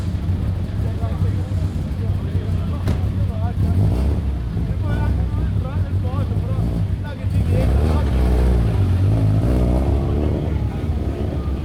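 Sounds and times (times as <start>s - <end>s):
cars starting and idling in a small town square: 0.0s - 11.6s
voices talking: 0.2s - 11.6s
car engine revving: 2.8s - 5.2s, 6.2s - 11.6s.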